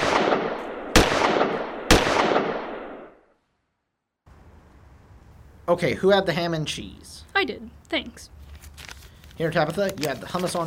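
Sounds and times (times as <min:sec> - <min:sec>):
gunshots: 0:00.0 - 0:03.2
speech: 0:05.7 - 0:08.4, 0:09.4 - 0:10.6.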